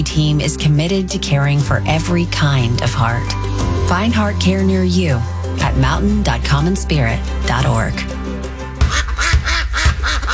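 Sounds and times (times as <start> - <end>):
speech: 0.0 - 8.2
ducks quacking at a spring bird refuge in Box Elder County: 8.8 - 10.3.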